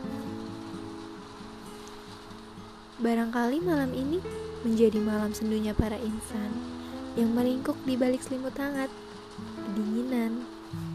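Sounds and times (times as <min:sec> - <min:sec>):
light rain with wind at night hitting glass: 0:00.0 - 0:10.9
speech: 0:03.0 - 0:10.5.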